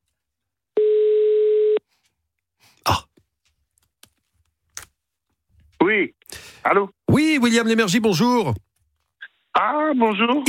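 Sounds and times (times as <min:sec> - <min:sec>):
phone line ring tone on an outgoing call: 0:00.8 - 0:01.8
throat-clearing noise: 0:02.8 - 0:03.2
speech: 0:06.0 - 0:08.7, 0:09.6 - 0:10.4.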